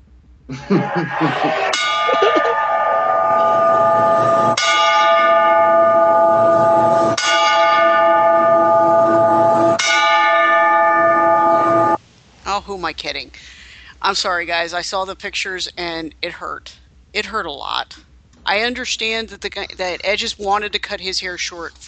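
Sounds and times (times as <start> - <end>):
laughter: 0.5 - 2.7
speech: 0.5 - 2.7, 14.0 - 21.8
large church bell tolling: 1.6 - 12.0.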